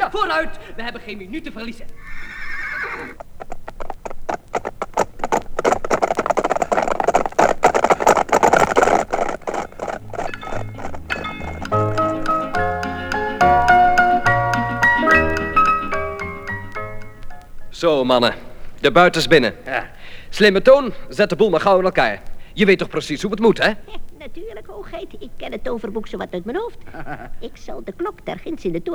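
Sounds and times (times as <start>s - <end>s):
saddled horses trotting with hooves clip-clopping: 0.0s - 28.9s
speech: 0.1s - 3.5s, 17.8s - 28.9s
horse whinnying: 2.0s - 13.3s
melodic music: 11.6s - 17.3s.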